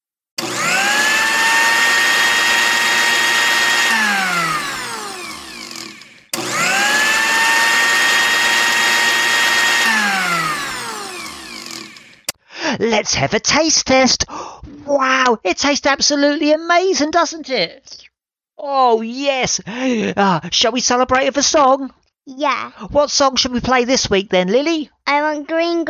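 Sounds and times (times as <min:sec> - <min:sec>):
blender crushing ice cubes and spices: 0:00.4 - 0:12.3
speech: 0:12.8 - 0:25.8.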